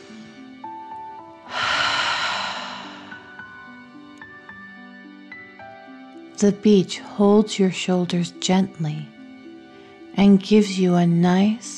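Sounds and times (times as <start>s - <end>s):
deep breathing in and out during a relaxation exercise: 1.5s - 3.6s
speech: 6.4s - 9.1s, 10.2s - 11.7s.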